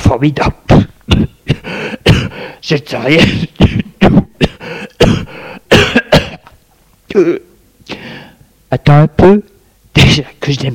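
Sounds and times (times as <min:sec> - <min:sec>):
speech: 0:00.2 - 0:00.6, 0:02.7 - 0:03.7, 0:07.2 - 0:07.5, 0:08.7 - 0:10.7
light coughing: 0:00.7 - 0:07.4.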